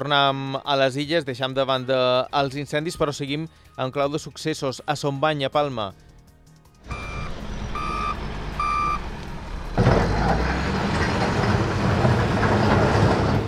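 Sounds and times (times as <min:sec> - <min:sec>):
speech: 0:00.0 - 0:06.1
excavator engine hum: 0:06.6 - 0:13.4
excavators working in a settlement in Palma: 0:06.8 - 0:13.4
excavator reversing beeps: 0:06.9 - 0:09.0.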